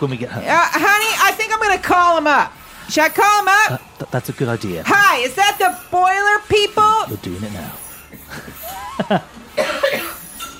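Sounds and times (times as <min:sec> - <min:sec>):
speech: 0:00.0 - 0:01.1, 0:01.7 - 0:09.4
laughter: 0:08.2 - 0:09.5
wet phlegmy coughing: 0:09.5 - 0:10.5.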